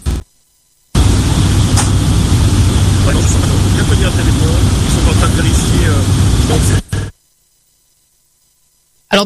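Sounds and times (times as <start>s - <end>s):
aircraft engines roaring inside a large cabin: 1.0s - 7.1s
speech: 3.9s - 6.8s.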